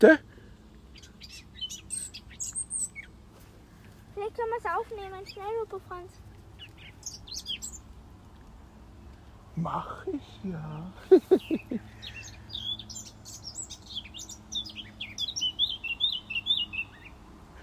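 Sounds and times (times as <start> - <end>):
speech: 0.0 - 0.3, 4.4 - 6.2, 9.6 - 12.0
bird chirping and singing in high twittering phrases: 0.9 - 3.2, 6.6 - 7.9, 10.7 - 17.2
people laughing: 10.8 - 11.9.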